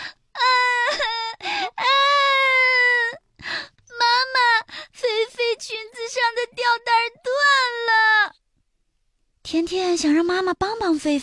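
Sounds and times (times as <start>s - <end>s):
child crying loudly: 0.4s - 3.2s, 4.0s - 4.7s, 5.8s - 8.3s
speech: 9.7s - 11.2s.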